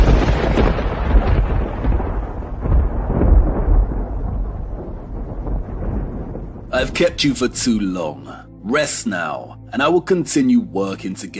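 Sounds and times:
thunder from an electric storm rolling: 0:00.0 - 0:08.0
speech: 0:06.8 - 0:11.3.

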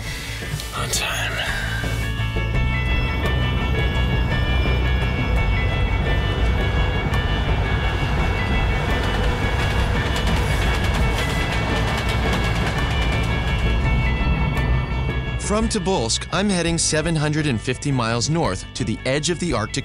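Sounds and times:
passenger train running on rails: 0:00.0 - 0:17.4
speech: 0:00.4 - 0:01.9, 0:15.5 - 0:19.8
passenger train wheels clicking over the track: 0:04.2 - 0:15.2.

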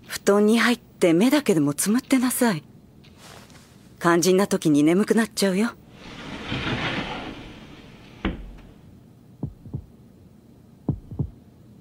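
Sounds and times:
speech: 0:00.3 - 0:02.7, 0:04.0 - 0:05.8
heavy heartbeat thudding in lub-dub pairs: 0:09.4 - 0:09.9, 0:10.9 - 0:11.4.

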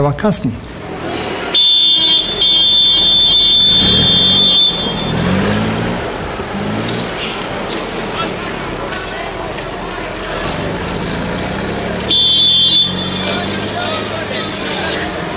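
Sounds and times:
military convoy vehicles driving out: 0:00.4 - 0:15.3
voices murmuring: 0:00.7 - 0:15.3
high whining tone: 0:01.5 - 0:06.4.

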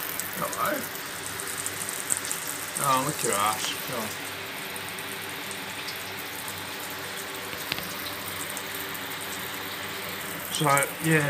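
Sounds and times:
shower water running: 0:00.0 - 0:11.2
speech: 0:00.4 - 0:01.0, 0:02.8 - 0:04.3, 0:10.6 - 0:11.2.

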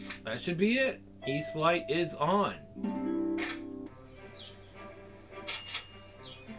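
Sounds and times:
speech: 0:00.3 - 0:03.1
birds chirping: 0:03.9 - 0:05.2, 0:05.9 - 0:06.5.

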